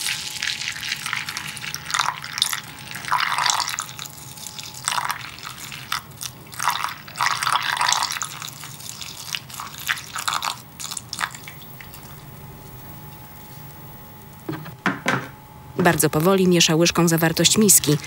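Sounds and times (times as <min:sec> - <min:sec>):
thin stream of milk trickling into a bowl of cereal: 0:00.0 - 0:12.2
speech: 0:15.9 - 0:18.0.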